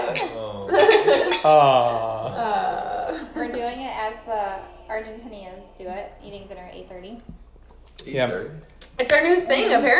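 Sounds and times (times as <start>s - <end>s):
wine glasses tapping together in a toast at dinner: 0.0s - 1.6s
laughter: 0.0s - 3.6s
speech: 0.2s - 7.4s, 8.0s - 9.9s.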